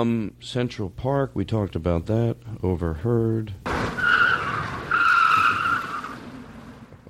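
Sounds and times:
speech: 0.0 - 4.0
car tires skidding and screeching under hard braking: 3.7 - 7.0.

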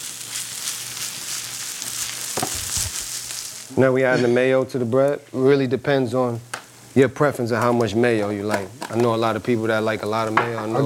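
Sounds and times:
meat sizzling in a hot pan: 0.0 - 10.8
speech: 3.7 - 10.8.

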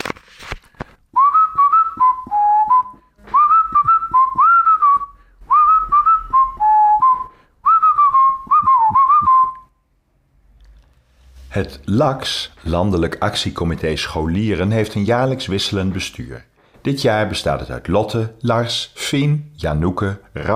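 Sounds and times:
person whistling a tune: 1.2 - 9.8
speech: 11.6 - 20.5.

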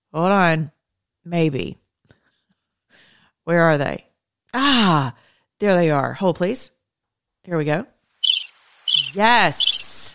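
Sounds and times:
speech: 0.1 - 1.8, 3.4 - 6.8, 7.4 - 7.9, 9.1 - 9.8
crickets chirping in high-pitched pulsing trills: 8.2 - 10.1.

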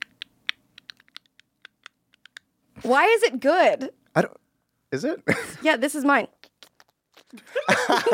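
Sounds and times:
ASMR typing on a computer keyboard with jam stuck under the keys: 0.0 - 2.5
speech: 2.8 - 6.4, 7.3 - 8.1
laughter: 7.4 - 8.1.

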